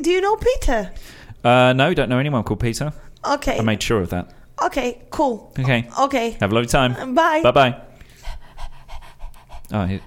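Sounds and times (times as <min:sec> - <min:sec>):
speech: 0:00.0 - 0:07.9, 0:09.7 - 0:10.0
dog panting: 0:06.6 - 0:10.0.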